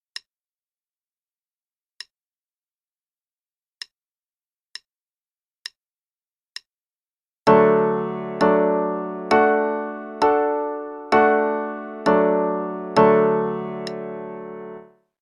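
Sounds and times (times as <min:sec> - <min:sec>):
chords in D major: 0:07.5 - 0:14.9.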